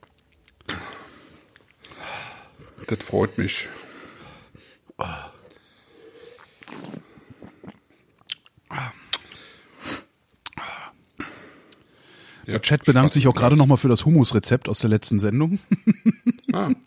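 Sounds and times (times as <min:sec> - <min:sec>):
person chewing crunchy food: 0:00.0 - 0:02.8, 0:06.2 - 0:09.5
soft breaths: 0:00.7 - 0:08.1, 0:08.7 - 0:12.5
speech: 0:02.9 - 0:03.8, 0:12.5 - 0:15.8, 0:16.5 - 0:16.8.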